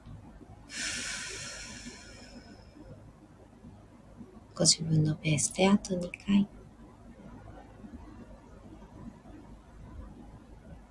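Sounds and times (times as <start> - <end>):
faint steady noise: 0.0 - 10.9
deep breath exhaled during guided meditation: 0.7 - 2.6
speech: 4.6 - 6.6.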